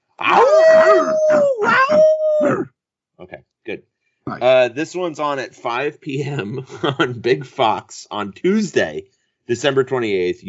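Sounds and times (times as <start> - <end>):
speech: 0.2 - 2.6, 3.2 - 10.4
two people imitating a wolf howl as a college football team cheer: 0.2 - 2.8.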